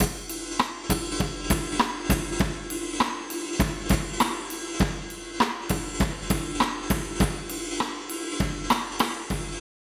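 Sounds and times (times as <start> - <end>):
drum overheads: 0.0 - 9.6.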